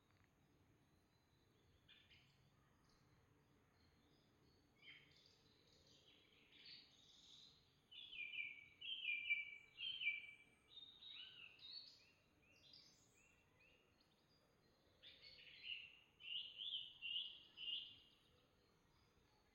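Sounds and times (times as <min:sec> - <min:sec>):
Common blackbird fluting warbled song among bluebells: 0:06.6 - 0:12.0, 0:15.0 - 0:18.1.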